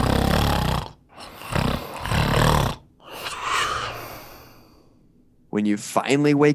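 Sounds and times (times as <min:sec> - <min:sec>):
loud rough snoring: 0:00.0 - 0:04.8
speech: 0:05.6 - 0:06.5.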